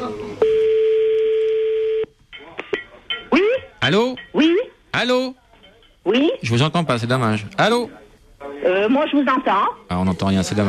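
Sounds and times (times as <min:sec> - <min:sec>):
steady telephone tone while dialing: 0:00.4 - 0:02.1
speech: 0:03.9 - 0:05.4, 0:06.0 - 0:08.0, 0:08.6 - 0:10.6.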